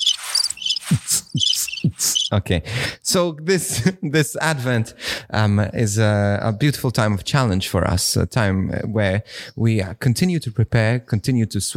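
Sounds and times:
crickets chirping in quick bright trills: 0.0 - 2.3
speech: 2.3 - 11.7.

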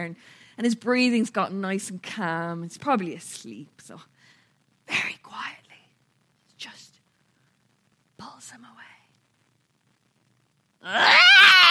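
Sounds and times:
speech: 0.0 - 4.2, 4.9 - 5.6, 8.2 - 8.9, 10.8 - 11.6
baby boy screaming and crying while being walked and rocked: 10.8 - 11.6.

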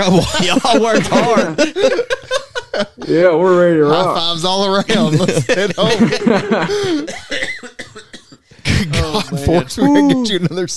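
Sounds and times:
speech: 0.0 - 7.5, 9.2 - 10.7
laughter: 0.0 - 8.1, 8.7 - 10.7
raspy fit of hacking coughs: 6.7 - 9.6.

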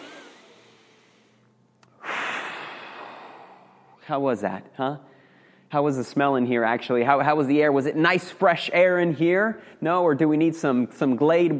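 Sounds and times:
deep breath: 0.8 - 4.0, 5.1 - 5.7
speech: 4.0 - 5.1, 5.7 - 11.5.

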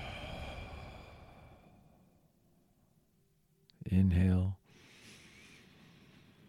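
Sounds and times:
deep breath inhaled through the nose and exhaled during guided meditation: 0.0 - 2.4, 4.6 - 6.4.

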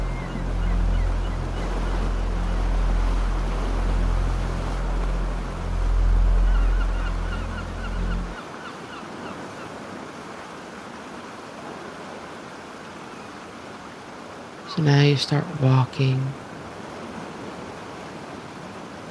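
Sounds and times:
ocean waves: 0.0 - 19.0
speech: 14.8 - 16.4.

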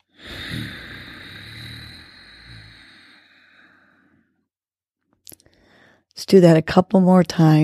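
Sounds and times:
long hissing breath drawn through the nose with throat contracted: 0.0 - 4.0
speech: 6.2 - 7.6.

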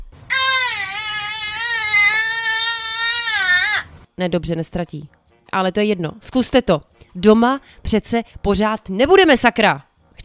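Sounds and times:
baby wailing: 0.3 - 3.9
speech: 4.2 - 10.2.

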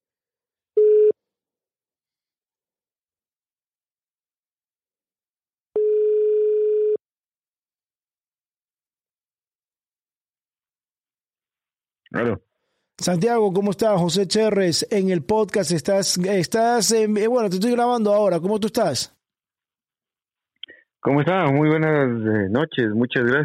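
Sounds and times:
telephone ringback tone: 0.8 - 1.2, 5.8 - 7.0
speech: 12.1 - 19.2, 21.0 - 23.4.

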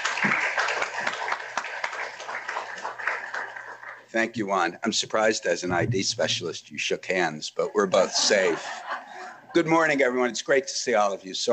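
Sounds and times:
lecture audience applause: 0.0 - 4.1
speech: 4.1 - 8.8, 9.5 - 11.5
laughter: 7.8 - 9.7.

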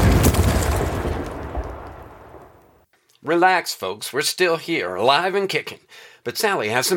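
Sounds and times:
explosion sound effect with heavy low rumble: 0.0 - 2.6
crackling debris: 0.0 - 2.8
speech: 3.2 - 6.9.

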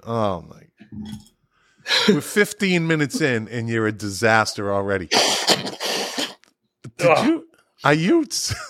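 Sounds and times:
speech: 0.0 - 1.3, 1.9 - 5.9, 7.0 - 8.6
person blowing nose into a tissue: 5.1 - 6.4.

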